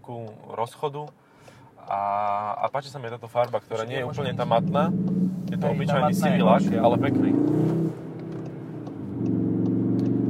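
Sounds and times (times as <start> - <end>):
speech: 0.0 - 1.2, 1.9 - 8.0
grey car engine revving: 3.8 - 10.2.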